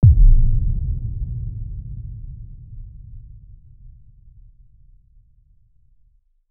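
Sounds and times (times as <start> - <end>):
designed motion deep impact: 0.0 - 4.7.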